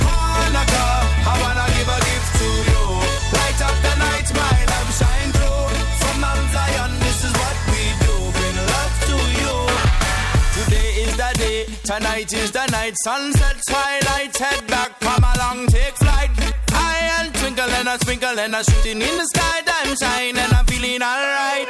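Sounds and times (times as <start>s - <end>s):
Hasidic reggae song: 0.0s - 21.6s
man singing and chanting lyrics: 0.0s - 21.6s
speech: 12.0s - 16.0s, 17.6s - 21.6s.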